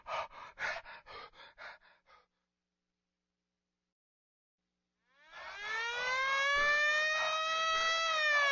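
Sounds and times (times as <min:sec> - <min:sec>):
heavy breathy panting: 0:00.0 - 0:02.5
ambulance siren wailing: 0:05.2 - 0:08.5.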